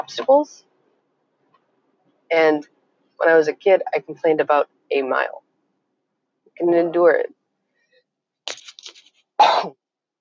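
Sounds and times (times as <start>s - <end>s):
speech: 0.1s - 0.7s, 2.3s - 5.4s, 6.6s - 7.4s, 9.4s - 9.8s
person coughing: 9.4s - 9.8s.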